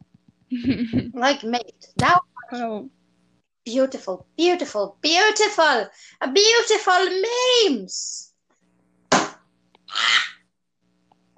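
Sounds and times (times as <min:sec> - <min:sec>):
speech: 0:00.5 - 0:03.0, 0:03.6 - 0:08.3
hand slapping a table: 0:09.1 - 0:09.4.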